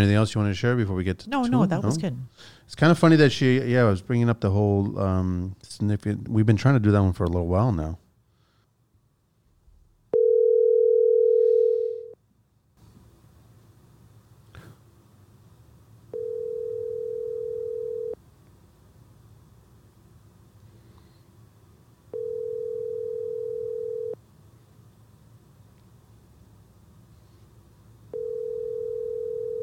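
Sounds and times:
speech: 0.0s - 8.0s
low hum: 0.0s - 29.6s
telephone tone bursts while placing a call: 10.2s - 12.2s, 16.1s - 18.2s, 22.1s - 24.2s, 28.1s - 29.6s.

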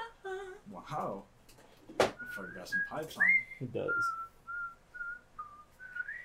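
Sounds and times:
speech: 0.9s - 1.3s, 2.3s - 4.3s
person whistling thin wavering notes: 2.2s - 6.2s.

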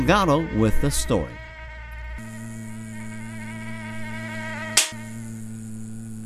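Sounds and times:
speech: 0.0s - 1.4s
mosquitoes buzzing: 0.0s - 6.2s
sharp slap-like transient: 4.8s - 5.0s.

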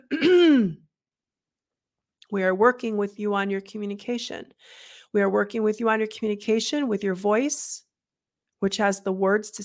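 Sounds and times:
soft throat clearing: 0.0s - 0.9s
speech: 2.3s - 7.9s, 8.6s - 9.6s.

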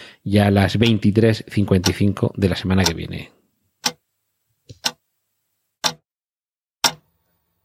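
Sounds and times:
speech: 0.2s - 3.4s
clock ticking: 0.7s - 3.2s, 3.8s - 4.1s, 4.7s - 5.0s, 5.8s - 6.0s, 6.8s - 7.1s.

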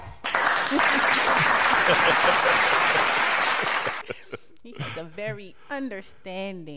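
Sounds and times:
crowd applauding: 0.1s - 4.2s
laughter: 0.6s - 5.4s
speech: 0.7s - 1.2s, 1.9s - 3.2s, 4.8s - 6.7s.

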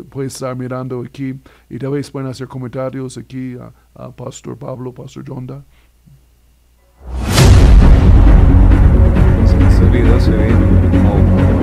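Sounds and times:
speech: 0.0s - 5.8s, 10.2s - 11.5s
rocket striking and exploding: 7.0s - 11.0s.

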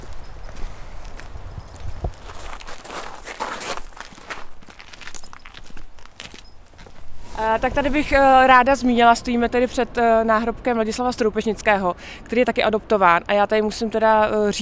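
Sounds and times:
footsteps on a grass lawn in a cemetery: 0.0s - 7.6s
speech: 7.4s - 14.6s.

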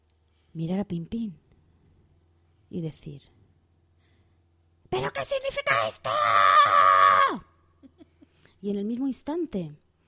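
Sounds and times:
speech: 0.6s - 1.4s, 2.7s - 3.4s, 4.9s - 7.5s, 8.6s - 9.8s
loud shout: 5.0s - 7.6s.

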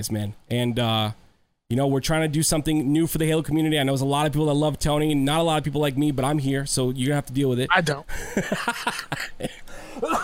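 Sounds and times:
speech: 0.0s - 10.2s
laughter: 8.1s - 10.2s
person coughing harshly: 9.4s - 10.2s.

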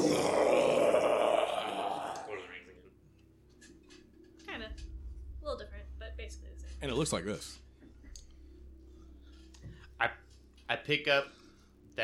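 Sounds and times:
breathy grunts and murmurs: 0.0s - 2.6s
human voice imitating a tentacled monster's roar: 0.0s - 2.6s
speech: 6.8s - 7.6s, 10.0s - 10.2s, 10.9s - 11.4s.

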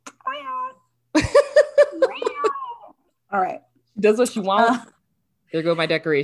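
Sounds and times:
cat meowing: 0.1s - 0.9s, 2.0s - 3.0s
speech: 3.3s - 4.9s, 5.5s - 6.2s.

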